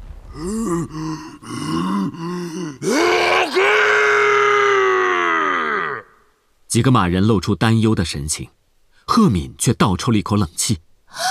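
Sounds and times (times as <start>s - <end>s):
human voice imitating a giant's loud roar: 0.3s - 6.2s
speech: 0.4s - 1.2s, 6.8s - 8.6s, 9.2s - 11.2s.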